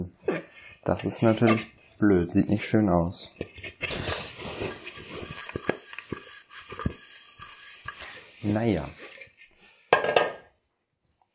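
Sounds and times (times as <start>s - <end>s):
speech: 0.8s - 4.1s, 8.4s - 9.0s
dishes, cutting board and glasses clattering as they are handled: 9.9s - 10.5s.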